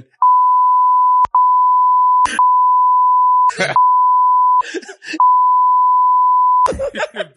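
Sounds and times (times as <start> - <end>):
censor bleep tone: 0.2 - 4.6, 5.2 - 6.7
laughter: 3.5 - 3.8, 6.7 - 7.3
speech: 3.6 - 3.9.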